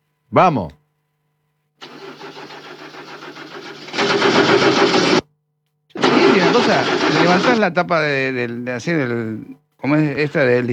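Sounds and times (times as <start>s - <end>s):
speech: 0.3s - 0.8s, 6.6s - 10.7s
car engine cranking with a rattle after starter motor repair: 1.8s - 5.2s, 6.0s - 7.6s.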